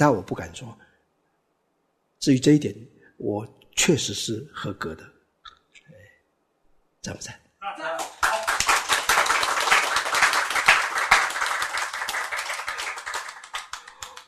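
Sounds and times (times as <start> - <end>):
speech: 0.0 - 0.9, 2.2 - 5.1, 7.0 - 8.1
audience clapping in rhythm: 8.0 - 14.2.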